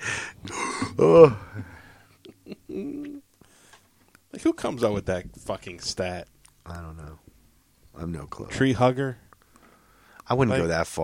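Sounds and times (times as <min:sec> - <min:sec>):
person gasping for air after holding breath: 0:00.0 - 0:02.1
soft breathing: 0:00.0 - 0:02.2, 0:03.4 - 0:04.1, 0:09.3 - 0:10.3
speech: 0:00.4 - 0:01.7, 0:04.4 - 0:07.3, 0:08.0 - 0:09.2, 0:10.3 - 0:11.0.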